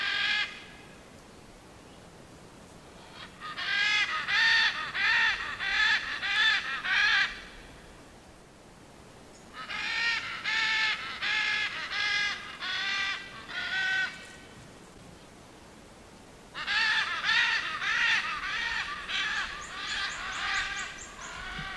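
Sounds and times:
great green macaw giving harsh raspy squawks to attract other parrots: 0.0s - 0.6s, 3.0s - 7.5s, 9.6s - 14.2s, 16.6s - 21.7s.

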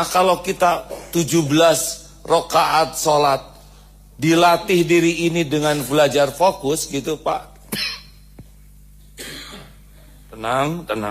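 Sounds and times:
speech: 0.0s - 3.5s, 4.2s - 8.0s, 10.4s - 11.1s
cough: 0.8s - 1.3s, 7.7s - 8.2s, 9.2s - 9.9s.

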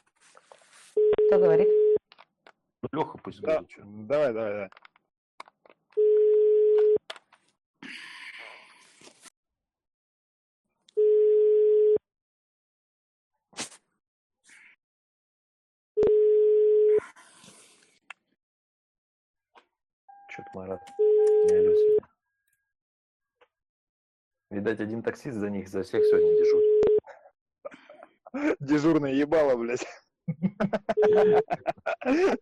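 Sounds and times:
rustling noises: 0.0s - 1.0s
telephone ringing tone while calling someone: 1.0s - 2.0s, 6.0s - 7.0s, 11.0s - 12.0s, 16.0s - 17.0s, 20.2s - 22.0s, 26.0s - 27.0s
speech: 1.2s - 1.8s, 2.8s - 4.8s, 24.5s - 26.8s, 28.3s - 32.4s
laughter: 30.3s - 32.4s.

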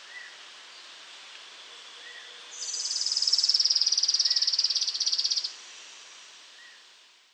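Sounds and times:
faint steady hiss: 0.0s - 7.3s
Streak-capped Antwren Terenura maculata trilling: 2.6s - 5.5s.

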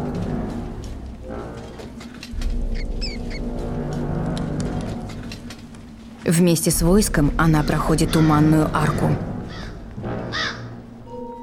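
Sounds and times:
steady low background: 0.0s - 11.4s
black raven cawing: 2.4s - 4.9s, 7.4s - 11.0s
speech: 6.3s - 9.3s.

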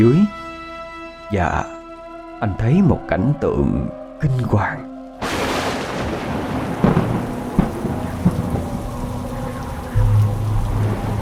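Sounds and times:
speech: 0.0s - 0.4s, 1.3s - 1.8s, 2.4s - 5.4s
heavy rain pouring in a thunderstorm: 4.4s - 11.2s
low rumbles of thunder: 5.2s - 11.2s.

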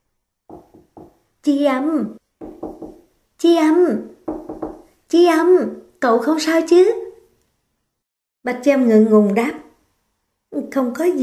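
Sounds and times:
knocking on a bathroom door: 0.5s - 1.2s, 2.4s - 3.1s, 4.2s - 5.0s
speech: 1.4s - 2.2s, 3.4s - 4.2s, 5.1s - 7.0s, 8.4s - 9.6s, 10.5s - 11.2s.

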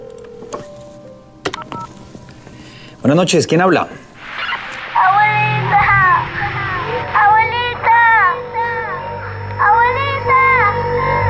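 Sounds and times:
speech: 3.0s - 4.1s
steady electronic telephone tone of an incoming call: 4.2s - 11.2s.

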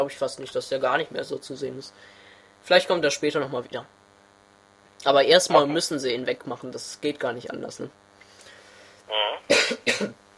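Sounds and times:
speech: 0.0s - 4.0s, 5.0s - 8.0s, 9.1s - 10.2s
person coughing: 9.2s - 10.2s.

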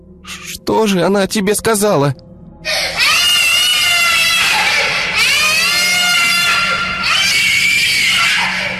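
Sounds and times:
speech: 0.2s - 2.2s
child's piercing high-pitched scream: 2.7s - 8.7s.

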